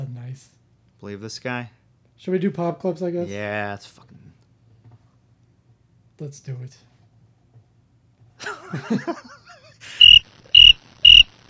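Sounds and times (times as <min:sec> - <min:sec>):
speech: 0:00.4 - 0:04.2, 0:06.2 - 0:06.9, 0:08.4 - 0:09.4
laughter: 0:08.4 - 0:10.0
crickets chirping: 0:09.9 - 0:11.4.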